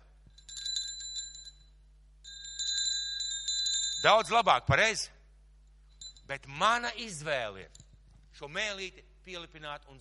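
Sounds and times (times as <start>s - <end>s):
small bell ringing: 0.3s - 4.5s, 5.9s - 6.3s
speech: 4.0s - 5.2s, 6.3s - 7.8s, 8.4s - 9.9s.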